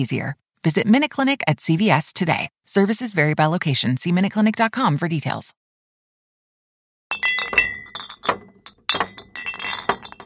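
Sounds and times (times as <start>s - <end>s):
speech: 0.0s - 5.6s
glass beer bottles clinking as they are gathered: 7.1s - 10.2s.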